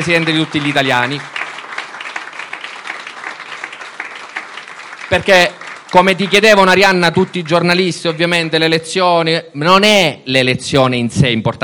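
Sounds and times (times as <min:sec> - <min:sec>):
speech: 0:00.0 - 0:01.4, 0:05.1 - 0:11.6
audience applause at an Italian political party gathering: 0:00.0 - 0:08.3.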